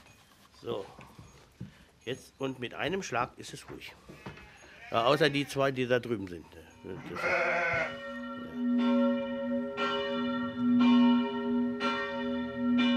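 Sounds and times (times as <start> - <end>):
speech: 0.6 - 1.2, 2.0 - 4.3, 4.9 - 8.1
sheep or goats bleating: 4.1 - 5.8, 6.9 - 8.0
abbey church bells ringing for midday prayer: 7.2 - 12.9.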